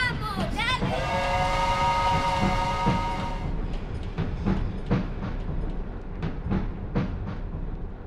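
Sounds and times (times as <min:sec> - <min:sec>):
departing train rumbling: 0:00.0 - 0:08.0
steady tonal sound: 0:00.8 - 0:05.0.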